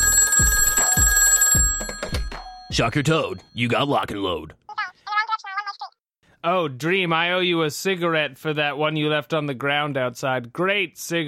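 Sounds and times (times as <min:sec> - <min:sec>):
telephone ringing with a continuous electronic tone: 0:00.0 - 0:03.8
speech: 0:02.8 - 0:04.6, 0:06.4 - 0:11.2.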